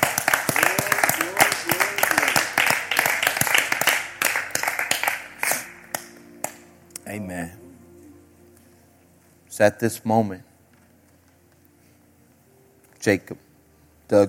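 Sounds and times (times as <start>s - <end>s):
audience clapping hands in praise: 0.0s - 6.6s
speech: 9.6s - 10.5s, 13.0s - 13.5s.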